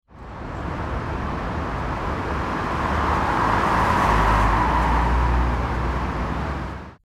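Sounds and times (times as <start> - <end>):
city traffic: 0.1 - 7.0.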